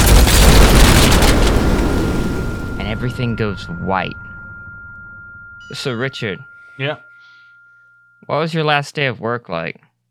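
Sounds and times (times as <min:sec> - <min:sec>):
huge explosion: 0:00.0 - 0:05.6
speech: 0:03.0 - 0:04.3, 0:05.7 - 0:07.1, 0:08.2 - 0:09.8.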